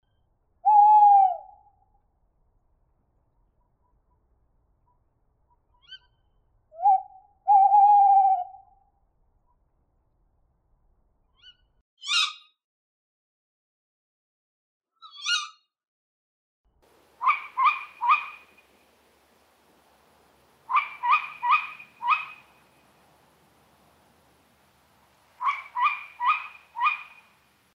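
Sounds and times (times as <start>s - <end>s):
pair of tawny owls: 0.6s - 1.7s, 6.8s - 8.7s, 16.9s - 27.7s.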